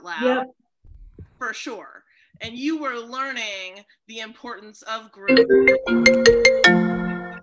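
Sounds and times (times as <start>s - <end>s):
speech: 0.0s - 0.6s, 1.4s - 6.8s
phone ringtone with four bright tonal notes: 5.3s - 7.3s.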